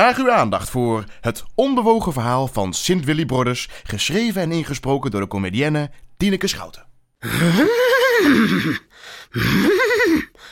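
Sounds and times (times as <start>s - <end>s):
speech: 0.0s - 10.5s
loud horse whinnying: 7.2s - 10.3s.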